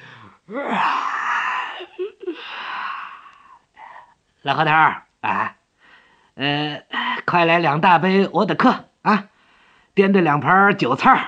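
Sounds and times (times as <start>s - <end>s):
voice imitating a long yawn of a policeman entering a snack shop: 0.0s - 3.9s
speech: 0.5s - 0.9s, 4.4s - 5.5s, 6.4s - 9.3s, 10.0s - 11.2s.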